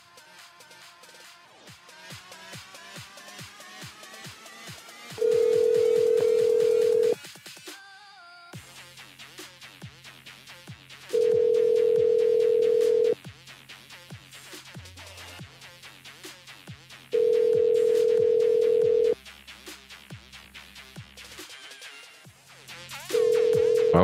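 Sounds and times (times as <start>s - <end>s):
telephone ringback tones on an outgoing call: 5.2s - 7.2s, 11.2s - 13.2s, 17.2s - 19.2s, 23.1s - 24.0s.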